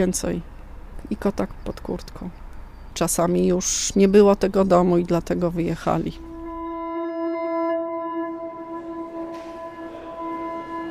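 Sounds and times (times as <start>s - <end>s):
speech: 0.0s - 2.4s, 3.0s - 6.3s
low rumble of railway station noise: 0.0s - 7.0s, 7.9s - 10.8s
piercing tonal whine at a railway station: 5.7s - 10.8s.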